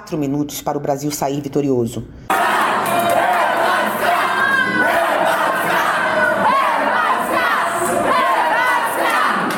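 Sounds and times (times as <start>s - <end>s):
speech: 0.1s - 2.4s
crowd of football fans cheering after an equalizing goal: 2.3s - 9.5s.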